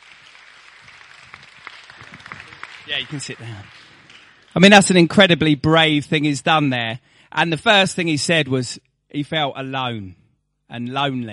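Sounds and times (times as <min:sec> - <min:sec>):
audience applause: 0:00.0 - 0:05.2
speech: 0:02.9 - 0:03.8, 0:04.5 - 0:11.3.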